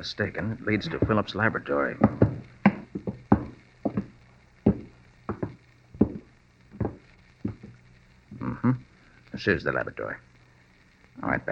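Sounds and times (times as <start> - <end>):
speech: 0.0 - 2.4, 9.4 - 10.3, 11.2 - 11.5
footsteps descending a ship's wooden companionway: 0.9 - 1.3, 2.0 - 8.5.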